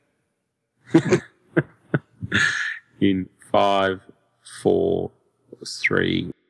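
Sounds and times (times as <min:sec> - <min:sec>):
speech: 0:00.9 - 0:01.3, 0:03.1 - 0:06.4
person coughing: 0:00.9 - 0:01.4, 0:02.2 - 0:02.8.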